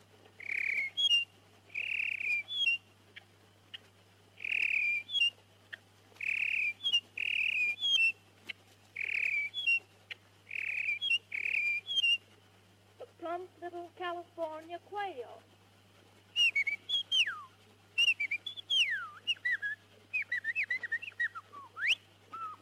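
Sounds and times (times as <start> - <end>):
red-winged blackbird calling: 0.4 - 2.8, 4.4 - 5.3, 6.2 - 8.2, 9.0 - 9.8, 10.5 - 12.2, 16.3 - 22.6
speech: 13.6 - 15.5.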